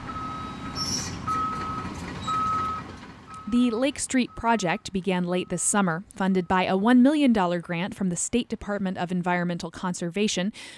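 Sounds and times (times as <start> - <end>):
high backup alarm beeping: 0.0 - 7.6
heavy construction machinery rumbling at a roadside worksite: 0.0 - 8.7
speech: 3.5 - 10.7.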